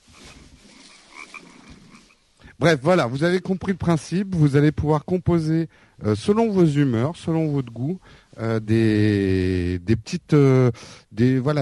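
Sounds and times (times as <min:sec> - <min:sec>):
frogs croaking in a dense chorus: 0:00.0 - 0:02.4
speech: 0:02.6 - 0:11.5.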